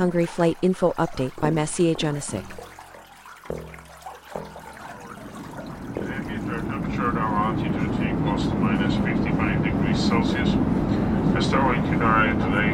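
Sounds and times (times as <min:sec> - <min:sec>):
speech: 0:00.0 - 0:02.6, 0:03.5 - 0:03.8, 0:08.4 - 0:09.2, 0:10.0 - 0:12.7
airplane passing roar: 0:06.0 - 0:12.7
voices talking: 0:06.0 - 0:12.7.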